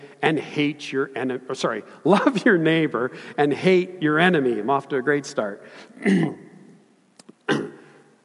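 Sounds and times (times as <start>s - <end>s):
speech: 0.2s - 6.5s
person clearing their throat: 6.0s - 6.5s, 7.4s - 8.0s.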